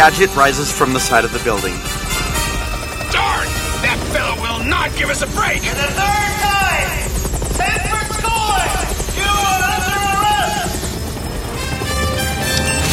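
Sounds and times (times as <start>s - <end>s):
helicopter hovering with rotor whir: 0.0s - 12.9s
mechanical whine: 0.0s - 12.9s
speech: 0.1s - 2.3s, 3.1s - 6.6s
animated voices speaking and exclaiming: 3.0s - 10.9s.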